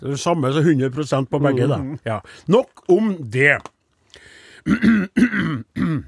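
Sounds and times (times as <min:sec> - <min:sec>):
speech: 0:00.0 - 0:03.8, 0:04.6 - 0:06.0
person clearing throat: 0:04.6 - 0:06.0.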